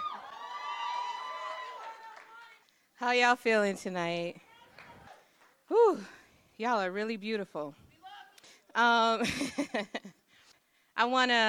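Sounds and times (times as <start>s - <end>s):
audience at a speaking event cheering and whooping: 0.0s - 2.6s
speech: 3.0s - 4.4s, 5.9s - 7.8s, 8.8s - 10.2s, 11.0s - 11.4s.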